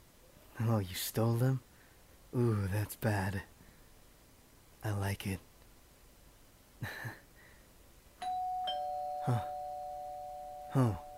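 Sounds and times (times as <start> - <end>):
speech: 0.6 - 1.7, 2.3 - 3.5, 4.8 - 5.5, 6.8 - 7.2, 9.2 - 9.5, 10.8 - 11.0
doorbell chime ringing: 8.2 - 11.1.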